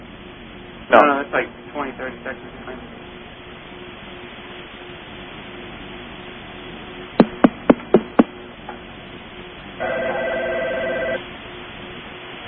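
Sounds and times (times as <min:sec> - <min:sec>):
speech: 0:00.9 - 0:02.9
telephone ringing with buzzy electronic tone through a thin line: 0:09.8 - 0:11.2.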